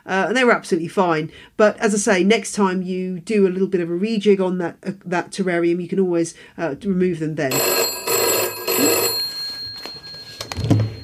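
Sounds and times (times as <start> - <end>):
speech: 0.1 - 8.0
telephone ringing with an electronic trill: 7.5 - 11.0.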